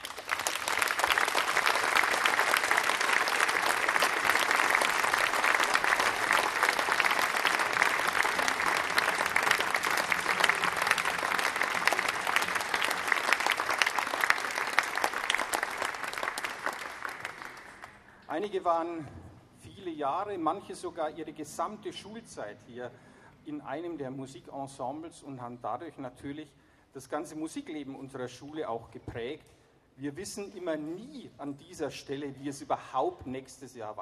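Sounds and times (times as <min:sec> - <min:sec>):
audience applause at a school event for graduating Abitur students: 0:00.0 - 0:18.1
speech: 0:18.4 - 0:19.2, 0:19.9 - 0:34.0.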